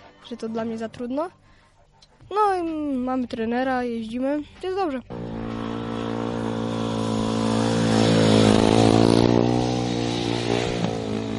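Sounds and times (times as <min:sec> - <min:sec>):
speech: 0:00.3 - 0:01.4, 0:02.3 - 0:05.3
speedway motorcycle engine revving with a rough rattling roar: 0:05.0 - 0:11.3.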